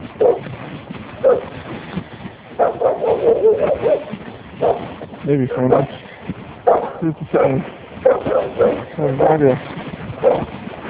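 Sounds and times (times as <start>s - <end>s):
neighbor's dog barking: 0.2s - 0.4s, 1.2s - 1.5s, 2.6s - 4.9s, 5.7s - 5.9s, 6.6s - 9.4s, 10.2s - 10.5s
speech: 5.3s - 6.0s, 7.0s - 7.8s, 9.0s - 9.7s.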